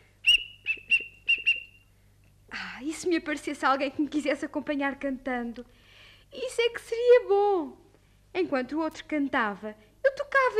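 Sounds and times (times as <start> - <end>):
small whistle played in short high notes: 0.2 - 1.9
speech: 2.8 - 10.5.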